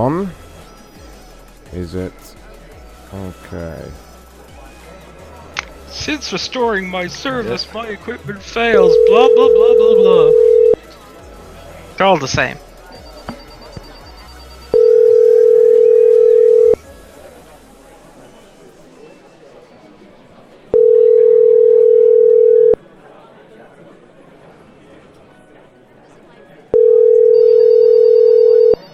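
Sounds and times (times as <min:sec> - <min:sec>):
speech: 0:00.0 - 0:00.4, 0:01.7 - 0:02.4, 0:03.1 - 0:04.1, 0:05.9 - 0:10.8, 0:12.0 - 0:12.6
telephone ringing: 0:07.0 - 0:10.8, 0:12.8 - 0:16.8, 0:20.7 - 0:22.8, 0:26.7 - 0:28.9.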